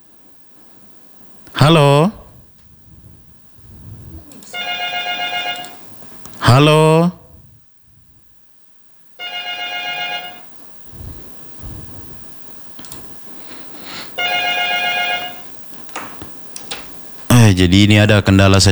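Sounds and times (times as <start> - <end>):
speech: 1.6 - 2.2, 6.5 - 7.2, 17.7 - 18.7
regular telephone ringing: 4.5 - 6.1, 9.2 - 10.6, 14.2 - 15.7.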